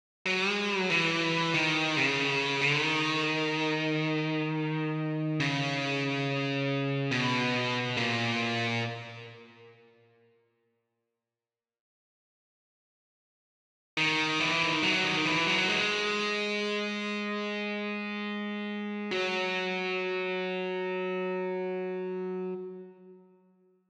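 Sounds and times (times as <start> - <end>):
song guitar solo: 0.3 - 9.9, 14.0 - 23.4.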